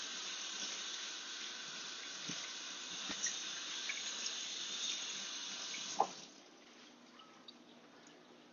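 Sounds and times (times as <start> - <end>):
tap water running at a sink as hands are rinsed: 0.0 - 6.5.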